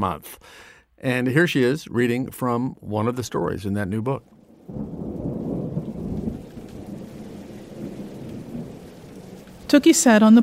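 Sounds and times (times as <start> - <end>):
speech: 0.0 - 5.5, 9.7 - 10.4
heavy rain pouring: 4.1 - 10.4.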